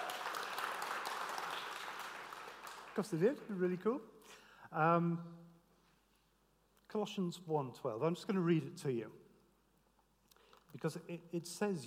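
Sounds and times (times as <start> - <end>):
audience applause for a band at a morning worship gathering: 0.0 - 3.4
speech: 3.0 - 5.5, 6.9 - 9.2, 10.7 - 11.8.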